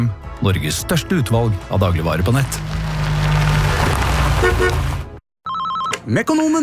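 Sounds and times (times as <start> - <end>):
speech: 0.0 - 2.8, 6.1 - 6.6
car engine roaring: 2.2 - 5.2.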